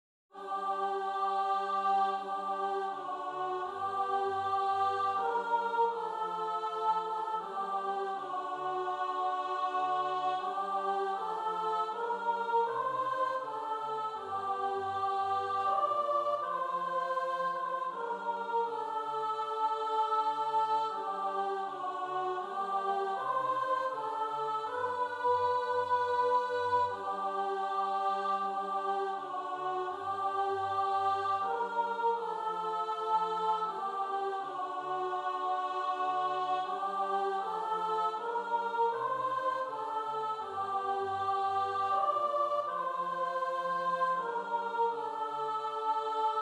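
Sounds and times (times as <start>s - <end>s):
sopranos and altos singing: 0.3s - 46.4s.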